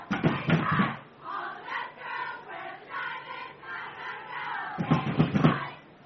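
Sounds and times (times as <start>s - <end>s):
door: 0.1s - 1.0s, 4.8s - 5.6s.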